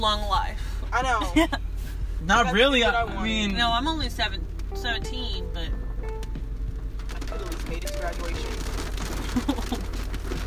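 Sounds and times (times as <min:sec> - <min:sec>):
speech: 0:00.0 - 0:05.8, 0:07.7 - 0:08.8
rain on a hard surface: 0:06.8 - 0:10.4.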